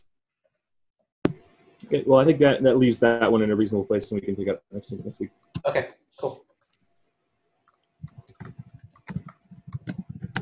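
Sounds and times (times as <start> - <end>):
speech: 1.9 - 6.3
rapid typing on a computer keyboard: 7.7 - 10.4.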